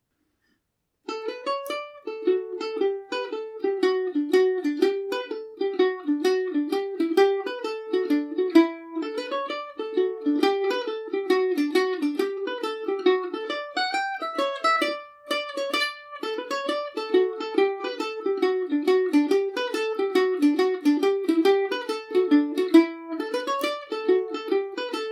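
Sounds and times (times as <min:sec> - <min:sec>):
Irish mandolin playing a hornpipe in D major: 0:01.1 - 0:25.0.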